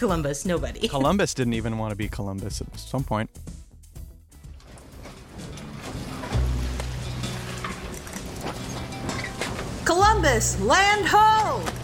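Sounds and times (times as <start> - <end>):
speech: 0.0 - 3.5, 10.2 - 11.8
wooden boat hull creaking and knocking: 4.4 - 10.2
ocean water surging around a wooden boat: 4.8 - 10.1.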